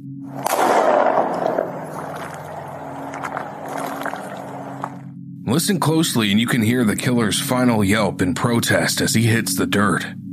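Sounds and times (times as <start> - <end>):
steady low hum: 0.1 - 5.4
gunshot: 0.4 - 1.8
speech: 5.6 - 10.2.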